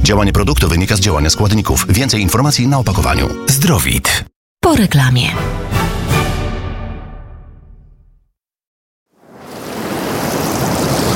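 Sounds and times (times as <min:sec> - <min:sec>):
speech: 0:00.1 - 0:05.7
Polish sea waves on the shore: 0:09.2 - 0:11.1.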